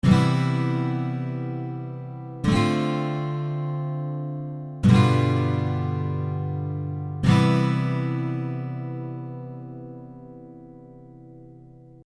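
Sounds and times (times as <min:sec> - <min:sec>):
guitar seventh chord in CDGC tuning: 0:00.0 - 0:12.0.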